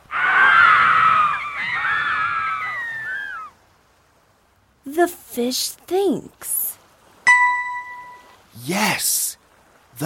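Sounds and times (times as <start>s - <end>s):
dolphins and whales squealing and whistling: 0.1s - 3.6s
speech: 5.0s - 6.6s, 8.6s - 9.4s.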